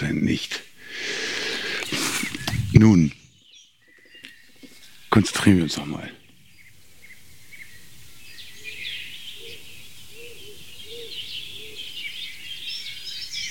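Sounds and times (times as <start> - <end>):
speech: 0.0 - 0.7, 2.8 - 3.2, 5.1 - 6.2
small birds chirping and twittering in a forest: 0.0 - 13.4
wild dove cooing in a forest: 8.6 - 12.1.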